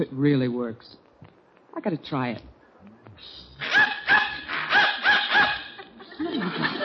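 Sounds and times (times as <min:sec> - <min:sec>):
speech: 0:00.0 - 0:01.0, 0:01.8 - 0:02.5, 0:03.2 - 0:04.0
dog barking in response to a dog whistle: 0:03.6 - 0:05.9
laughter: 0:04.5 - 0:06.8.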